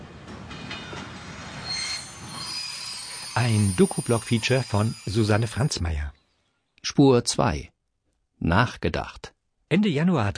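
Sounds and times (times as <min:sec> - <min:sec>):
train rumbling through a station: 0:00.0 - 0:06.1
train wheels letting out high-pitched metallic squeals: 0:00.5 - 0:06.3
speech: 0:03.4 - 0:06.2, 0:07.0 - 0:07.7, 0:08.4 - 0:10.3.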